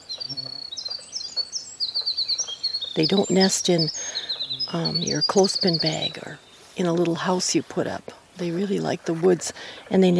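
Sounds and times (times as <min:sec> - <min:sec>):
winter wren singing: 0:00.0 - 0:10.1
speech: 0:03.0 - 0:10.1.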